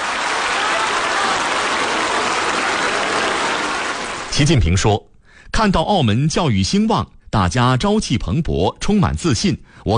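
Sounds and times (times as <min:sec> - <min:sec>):
large crowd of researchers, teachers and students applauding in a school library hall: 0:00.0 - 0:04.4
speech: 0:04.4 - 0:09.9.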